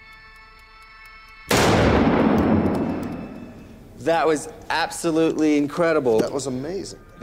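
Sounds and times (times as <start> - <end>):
two rapid gunshots from a gun cocked before each shot: 1.5 - 3.4
long booming gunshot tail: 1.5 - 3.9
speech: 4.0 - 7.2.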